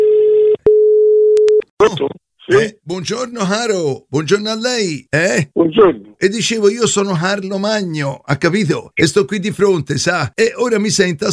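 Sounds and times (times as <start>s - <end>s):
steady telephone line tone as a call is placed: 0.0s - 1.6s
speech: 1.9s - 11.3s.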